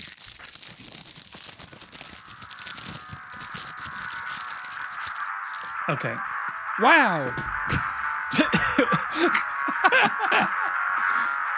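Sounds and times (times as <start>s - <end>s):
wet plastic wrap package crinkling as it is unwrapped: 0.0s - 5.8s
speech: 5.9s - 10.6s
laughter: 7.7s - 10.8s.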